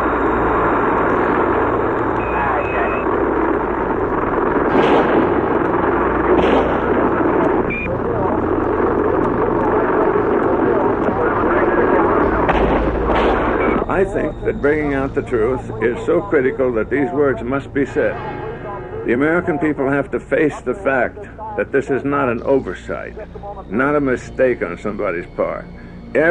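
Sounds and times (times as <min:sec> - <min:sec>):
police radio tape hiss and murmur: 0:00.0 - 0:26.2
rifle shots superimposed on a police radio tape: 0:04.7 - 0:07.4, 0:12.4 - 0:13.7
speech: 0:14.0 - 0:18.4, 0:19.1 - 0:26.2.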